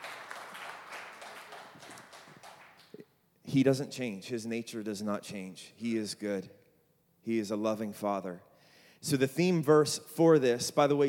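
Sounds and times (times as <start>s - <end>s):
crowd applauding: 0.0s - 3.0s
speech: 3.5s - 6.6s, 7.2s - 11.0s.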